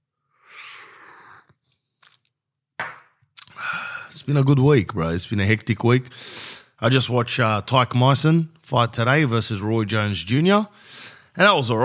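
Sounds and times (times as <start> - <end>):
sharp exhale: 0.3 - 1.5, 3.5 - 4.2, 6.1 - 6.8, 10.8 - 11.3
person sipping a drink of rakia from a glass: 0.4 - 2.3, 3.4 - 4.1
small mouth sounds: 3.4 - 4.2
speech: 4.1 - 11.8.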